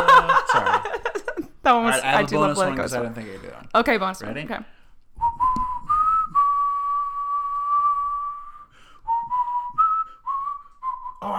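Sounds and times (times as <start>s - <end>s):
laughter: 0.0s - 2.8s
speech: 1.7s - 4.8s
person whistling a tune: 5.2s - 11.3s.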